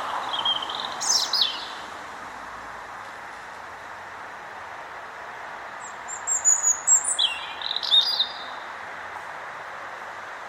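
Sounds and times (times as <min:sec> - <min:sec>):
European robin Erithacus rubecula singing: 0:00.0 - 0:01.9, 0:05.8 - 0:08.7
rushing background noise: 0:00.0 - 0:10.4.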